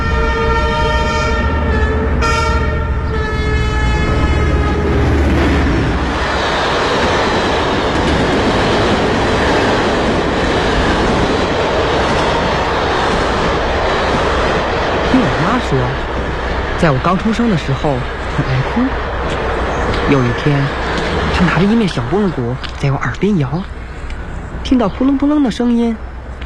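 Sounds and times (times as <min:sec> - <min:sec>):
train horn on the railway: 0:00.0 - 0:05.2
train wheels and cars rumbling along the railway: 0:00.0 - 0:26.4
speech: 0:16.8 - 0:19.0, 0:20.1 - 0:23.8, 0:24.6 - 0:26.1.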